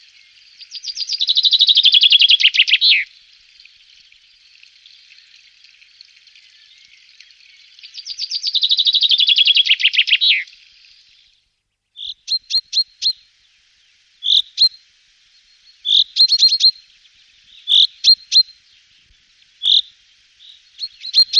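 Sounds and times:
chaffinch singing and calling: 0.6s - 3.0s, 7.8s - 10.5s, 12.0s - 13.2s, 15.7s - 16.8s, 17.5s - 18.5s, 19.6s - 21.3s.

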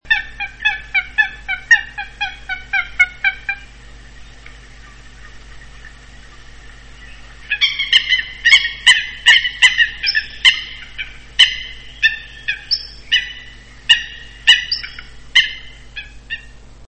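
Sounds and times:
Fulica atra coot: 0.1s - 6.4s, 7.0s - 16.6s.

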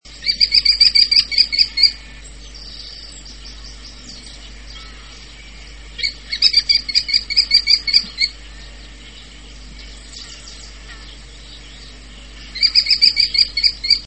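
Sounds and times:
Falco tinnunculus calling: 0.0s - 14.0s.

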